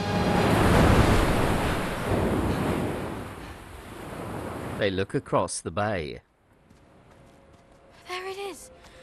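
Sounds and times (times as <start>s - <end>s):
wind over the water: 0.1s - 4.8s
sea waves crashing on rocks: 0.1s - 4.9s
speech: 4.8s - 6.3s.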